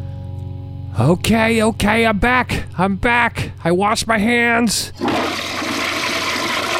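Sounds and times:
speech: 0:01.0 - 0:05.6
toilet flushing: 0:05.0 - 0:06.7.

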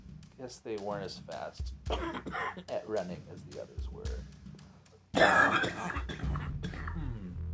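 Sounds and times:
speech: 0:00.4 - 0:04.3, 0:05.1 - 0:06.4
harsh throat-clearing cough: 0:01.9 - 0:02.7, 0:05.1 - 0:07.2
rough throaty noises: 0:05.1 - 0:07.4.

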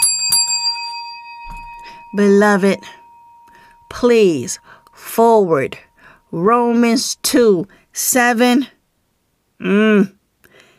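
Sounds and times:
small bell struck: 0:00.0 - 0:06.4
speech: 0:02.1 - 0:03.0, 0:04.0 - 0:08.8, 0:09.6 - 0:10.2.

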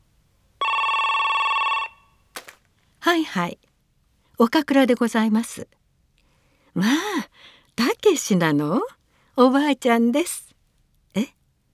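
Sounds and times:
telephone bell ringing: 0:00.6 - 0:02.2
speech: 0:03.0 - 0:03.7, 0:04.4 - 0:05.8, 0:06.8 - 0:10.5, 0:11.1 - 0:11.4.

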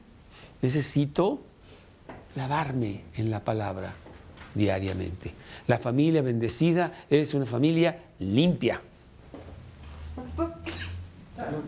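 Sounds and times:
speech: 0:00.6 - 0:01.5, 0:02.4 - 0:08.9
sneeze during a sermon: 0:10.4 - 0:11.0.

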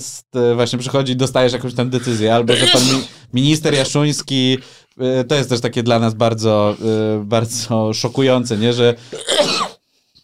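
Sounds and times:
speech: 0:00.0 - 0:09.6
harsh cough or sneeze: 0:02.5 - 0:04.0, 0:09.1 - 0:09.8.

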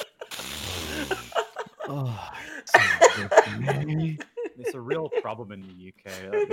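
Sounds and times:
laughter: 0:00.0 - 0:06.5
voice making playful sniffing noises: 0:00.3 - 0:01.4
speech: 0:01.9 - 0:06.5.

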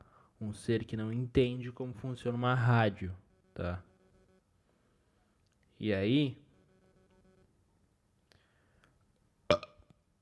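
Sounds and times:
speech: 0:00.4 - 0:03.9, 0:05.8 - 0:06.4
loud rough throaty burp: 0:09.5 - 0:09.9.

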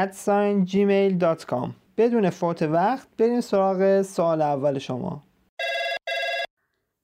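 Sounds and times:
speech: 0:00.0 - 0:05.3
telephone ringing: 0:05.6 - 0:06.6.

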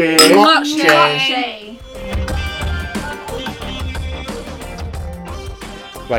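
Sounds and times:
drinks and tableware clattering and rustling: 0:00.1 - 0:01.1
glasses clinking during a toast: 0:00.1 - 0:01.2.

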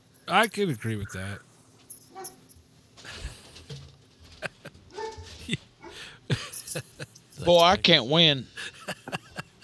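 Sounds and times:
speech: 0:00.3 - 0:01.5, 0:06.8 - 0:08.5
laughter: 0:04.2 - 0:07.9, 0:08.5 - 0:09.6
dog whining and huffing: 0:04.9 - 0:06.0.

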